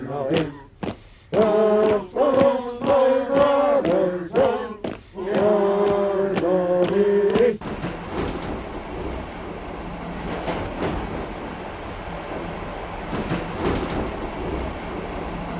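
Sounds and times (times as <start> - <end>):
train rolling along the rails: 0.0 - 15.5
speech: 0.1 - 0.6.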